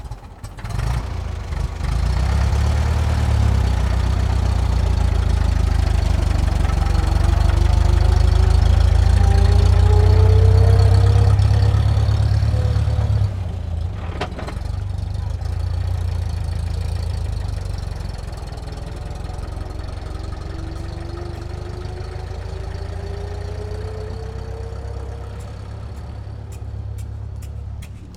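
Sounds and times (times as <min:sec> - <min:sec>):
1926 Chevrolet 30cwt truck engine starting: 0:00.0 - 0:28.1.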